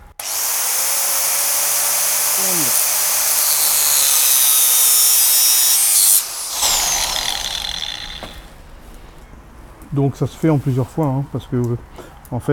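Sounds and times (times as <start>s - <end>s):
angle grinder cutting metal under steady pressure: 0.0s - 8.6s
speech: 10.0s - 12.5s.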